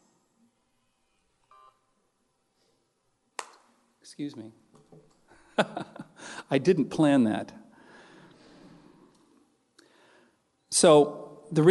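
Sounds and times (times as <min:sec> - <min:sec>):
cell phone beeping while being turned off: 0:01.5 - 0:01.8
speech: 0:04.1 - 0:05.9, 0:06.5 - 0:07.6, 0:10.8 - 0:11.6
laughter: 0:05.4 - 0:06.2.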